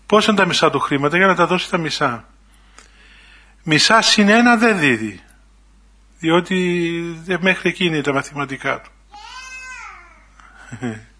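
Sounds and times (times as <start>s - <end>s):
speech: 0.1s - 2.3s, 3.6s - 5.2s, 6.2s - 9.3s, 10.7s - 11.1s
baby babbling: 9.1s - 10.4s
baby squealing high-pitched: 9.2s - 10.1s.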